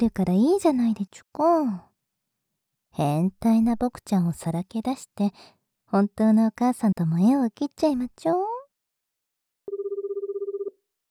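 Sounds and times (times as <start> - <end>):
speech: 0.0 - 1.9, 3.0 - 8.5
ringback tone from an outgoing telephone call: 9.7 - 10.8.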